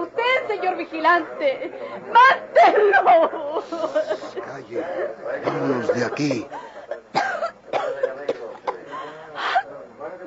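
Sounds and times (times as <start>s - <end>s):
speech: 0.6s - 6.7s
laughter: 2.5s - 4.6s, 5.4s - 7.1s
woman coughing and gasping in a radio drama: 7.1s - 8.9s.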